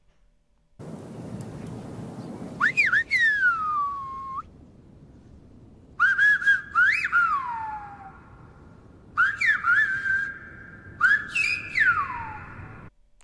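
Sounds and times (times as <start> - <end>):
loud human whistling of a whistled language: 2.6 - 4.5, 6.0 - 8.1, 9.2 - 12.5.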